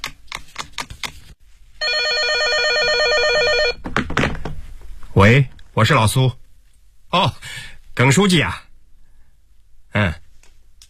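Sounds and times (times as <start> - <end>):
telephone ringing on a call to a pharmacy: 1.8 - 3.8
speech: 5.2 - 6.4, 7.1 - 8.6, 10.0 - 10.2.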